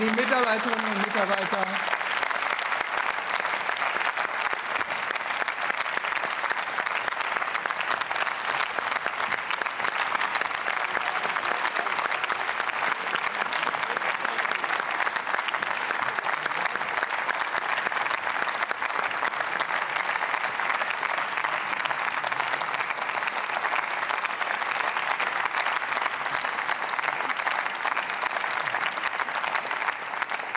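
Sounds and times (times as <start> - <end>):
sustained applause from a large assembly in parliament: 0.0 - 30.5
speech: 0.4 - 1.7.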